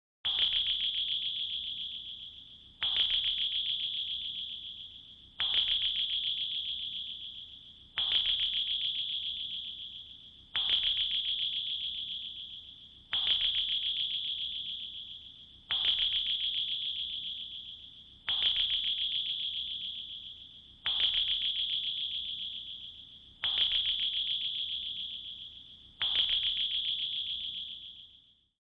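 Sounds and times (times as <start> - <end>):
submarine sonar pings: 0.3 - 28.6.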